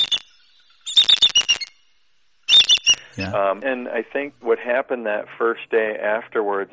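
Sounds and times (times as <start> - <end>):
eagle chortling warning call: 2.5 - 3.4
speech: 3.2 - 6.7.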